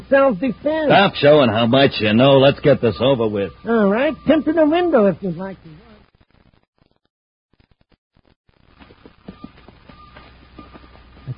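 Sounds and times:
dense steady wash of noise: 0.0s - 6.0s, 8.6s - 11.3s
speech: 0.1s - 5.9s
horse hooves clip-clopping: 8.7s - 11.3s.

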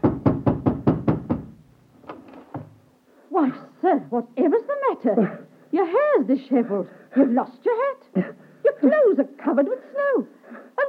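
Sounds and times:
heavy knocking on a door: 0.0s - 1.6s
speech: 4.1s - 10.3s.

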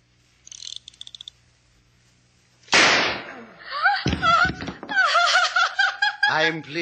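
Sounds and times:
loud gunshot at a dinner: 2.7s - 3.4s
laughter: 3.6s - 6.8s.

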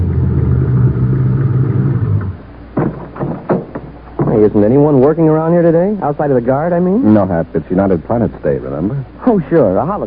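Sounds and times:
car engine rumbling: 0.0s - 4.7s
short clunks: 2.1s - 4.6s
speech: 4.4s - 10.0s.

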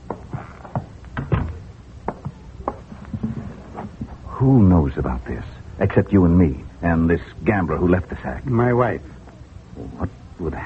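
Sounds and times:
shuffling footsteps: 0.0s - 4.4s
door shut with a soft thud: 1.2s - 1.6s
speech: 4.4s - 9.2s, 9.8s - 10.6s.

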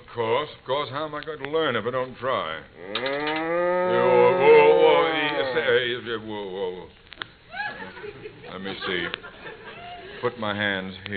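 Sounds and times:
speech: 0.2s - 4.3s, 5.5s - 7.0s, 8.5s - 9.3s, 10.2s - 11.1s
cow mooing in a barn before morning milking: 2.8s - 5.8s
laughter: 7.5s - 10.4s.

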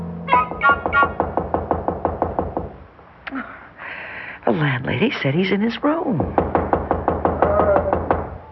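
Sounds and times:
firm knocks on the door of a man's room: 0.3s - 2.8s, 6.1s - 8.4s
speech: 4.6s - 6.5s.

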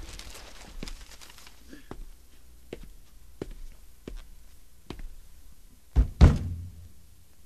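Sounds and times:
hand thumping on the cabinet of an old faltering radio set: 5.9s - 6.6s.

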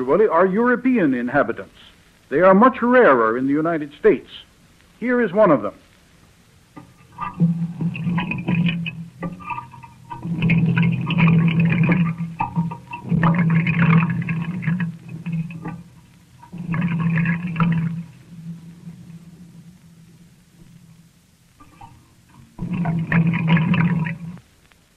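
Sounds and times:
speech: 0.0s - 5.8s
water gurgling through an ordinary pipe: 6.7s - 24.5s
deep hum: 6.8s - 24.4s.

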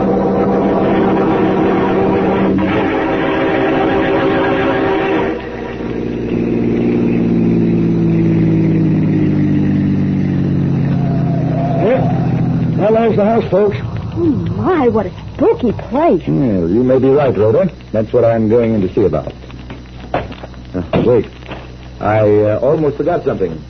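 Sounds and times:
car engine driving steadily: 0.0s - 23.6s
speech: 13.5s - 13.9s, 14.6s - 19.4s, 21.1s - 21.4s, 22.0s - 23.6s.

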